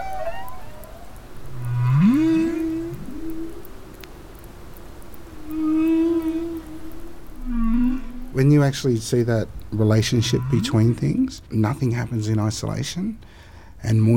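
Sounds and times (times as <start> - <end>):
whale calls: 0.0 - 4.3, 5.3 - 8.5, 10.1 - 11.3
underwater noise: 0.0 - 12.2
speech: 8.4 - 14.1.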